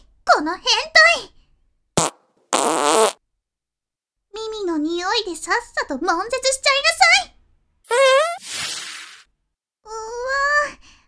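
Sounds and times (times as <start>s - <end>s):
speech: 0.4s - 1.4s, 5.1s - 7.3s
young woman farting: 2.0s - 3.2s, 7.9s - 9.2s.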